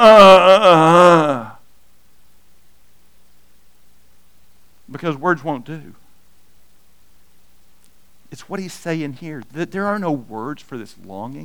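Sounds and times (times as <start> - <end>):
long low human groan while unfolding the body: 0.0 - 1.6
speech: 5.0 - 6.0, 8.4 - 11.4.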